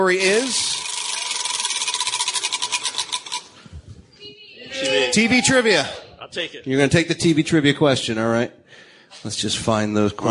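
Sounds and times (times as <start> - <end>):
speech: 0.0 - 0.8, 5.1 - 8.6, 9.2 - 10.2
category wheel spun during a trivia game: 0.0 - 3.5.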